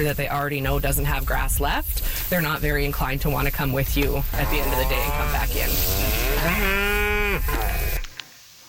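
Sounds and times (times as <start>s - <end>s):
speech: 0.0s - 7.6s
steady outdoor rumble: 0.0s - 8.1s
cow mooing: 4.3s - 8.1s.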